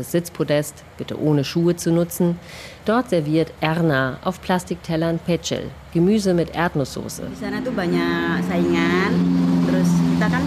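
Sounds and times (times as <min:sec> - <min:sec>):
speech: 0:00.0 - 0:09.4, 0:10.2 - 0:10.4
steady low rumble of traffic: 0:00.0 - 0:10.4
vehicles passing: 0:01.6 - 0:10.4.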